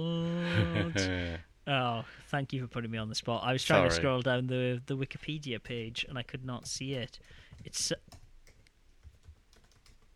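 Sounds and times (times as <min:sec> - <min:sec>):
speech: 0:00.0 - 0:08.1
computer keyboard typing: 0:06.6 - 0:10.1.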